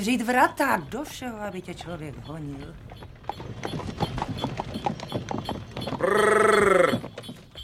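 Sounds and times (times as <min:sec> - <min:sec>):
speech: 0:00.0 - 0:04.5
harness bells jingling on horses: 0:00.0 - 0:07.6
horse hooves clip-clopping: 0:00.0 - 0:07.6.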